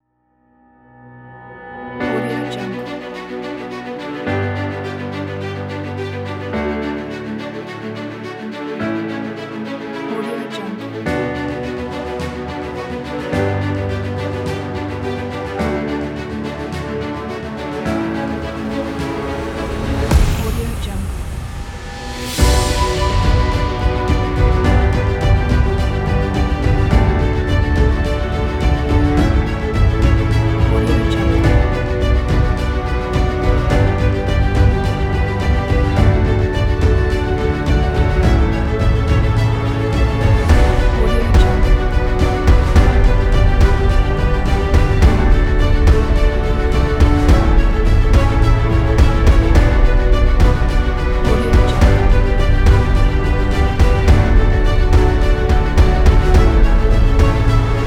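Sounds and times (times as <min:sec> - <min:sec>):
epic motivational orchestral corporate music: 0:00.5 - 0:57.8.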